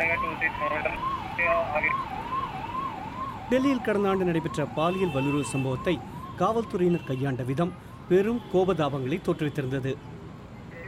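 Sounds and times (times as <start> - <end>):
speech: 0.0 - 2.4, 3.5 - 10.1
police car siren wailing: 0.0 - 8.4.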